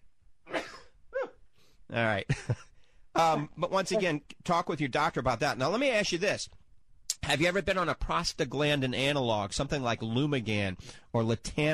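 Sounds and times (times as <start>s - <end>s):
person sneezing: 0.5s - 1.4s
speech: 1.9s - 6.6s, 7.3s - 11.7s.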